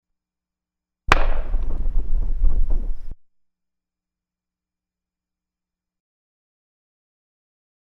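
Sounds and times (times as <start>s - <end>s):
WW2 era British Enfield No.4 Mk 1 rifle shots at 200 meters: 1.1s - 2.0s.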